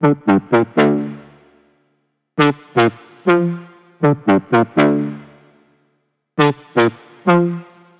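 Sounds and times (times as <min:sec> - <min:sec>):
deep house synth loop at 120 BPM in D: 0:00.0 - 0:01.4, 0:02.4 - 0:05.4, 0:06.4 - 0:07.7.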